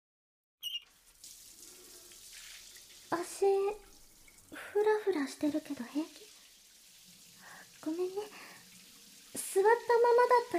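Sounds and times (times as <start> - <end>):
tap squeak: 0.6 - 0.9
hot water running from a tap: 0.6 - 10.5
speech: 4.8 - 6.3, 7.8 - 8.5, 9.5 - 10.5.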